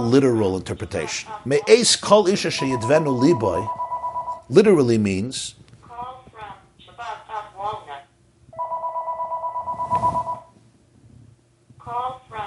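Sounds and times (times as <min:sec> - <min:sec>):
speech: 0:00.0 - 0:03.8, 0:04.5 - 0:05.6
electronic telephone ringing with warbling tone: 0:02.5 - 0:04.5, 0:08.6 - 0:10.5.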